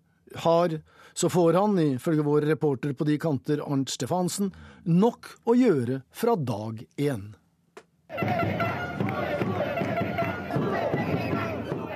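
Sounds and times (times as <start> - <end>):
speech: 0.4 - 7.4
large crowd of supporters in Peru cheering and chanting after presidential election: 8.1 - 11.9.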